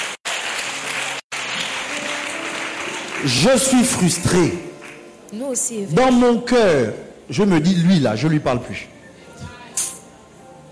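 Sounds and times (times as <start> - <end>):
audience applauding and cheering: 0.0 - 5.1
speech: 3.2 - 4.7, 5.3 - 9.5.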